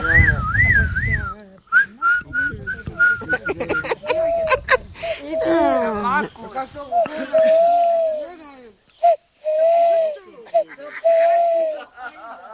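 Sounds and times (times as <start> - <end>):
person whistling an imitation of an owl call: 0.0 - 3.4, 6.9 - 8.3, 9.0 - 11.9
laughter: 3.0 - 6.1, 7.0 - 8.2, 10.2 - 12.5.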